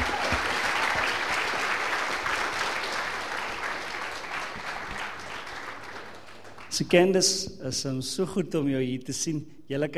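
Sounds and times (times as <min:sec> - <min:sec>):
audience applause for a young woman being given a certificate: 0:00.0 - 0:06.8
speech: 0:06.8 - 0:09.9.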